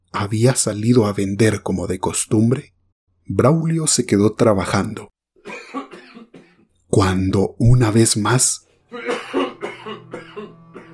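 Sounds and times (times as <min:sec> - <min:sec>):
speech: 0:00.2 - 0:05.1, 0:06.9 - 0:09.4
old man coughing behind a wooden wall: 0:05.4 - 0:06.7, 0:08.9 - 0:10.9.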